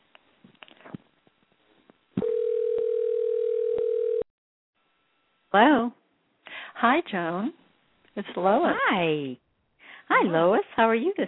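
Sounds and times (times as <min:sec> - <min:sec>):
telephone ringing tone on the line: 0:02.2 - 0:04.3
speech: 0:05.5 - 0:06.0, 0:06.8 - 0:07.6, 0:08.2 - 0:09.4, 0:10.1 - 0:11.2.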